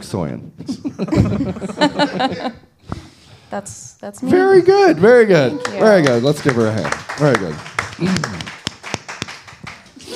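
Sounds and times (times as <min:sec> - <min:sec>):
speech: 0:00.1 - 0:08.6
laughter: 0:00.7 - 0:02.7
hand slapping against a thigh: 0:08.0 - 0:10.0.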